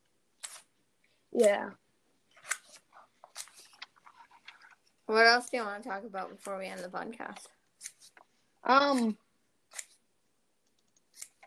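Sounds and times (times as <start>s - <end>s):
scissors cutting paper: 0.4s - 0.7s, 2.4s - 4.0s, 5.2s - 8.2s, 8.8s - 10.0s, 10.8s - 11.4s
speech: 1.4s - 1.8s, 5.1s - 7.6s, 8.6s - 9.2s.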